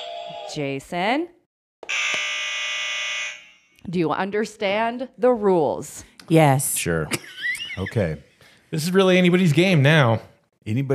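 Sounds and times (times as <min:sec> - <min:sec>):
speech: 0:00.5 - 0:02.0, 0:03.8 - 0:10.9
loud sustained electronic buzzer: 0:01.8 - 0:03.8.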